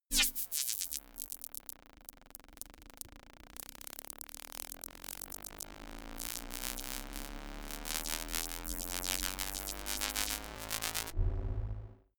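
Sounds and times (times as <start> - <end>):
organic glitch riser science fiction sound effect: 5.2 - 12.1.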